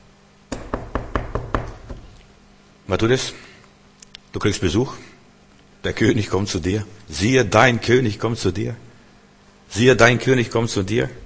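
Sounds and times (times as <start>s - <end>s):
sharp knocks on a front door: 0.5s - 2.0s
speech: 2.9s - 3.5s, 4.4s - 5.1s, 5.8s - 8.9s, 9.7s - 11.2s.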